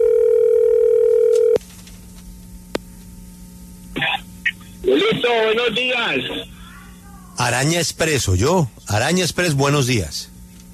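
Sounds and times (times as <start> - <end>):
telephone line tone during an outgoing call waiting for an answer: 0.0 - 1.6
speech: 5.1 - 6.5, 7.4 - 10.3.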